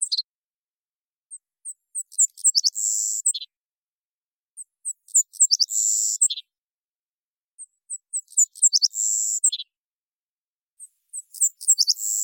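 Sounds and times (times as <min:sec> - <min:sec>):
Savannah sparrow Passerculus sandwichensis singing buzzy trill songs in Washington: 0:00.0 - 0:00.3, 0:01.3 - 0:03.6, 0:04.6 - 0:06.6, 0:07.6 - 0:09.8, 0:10.8 - 0:12.2.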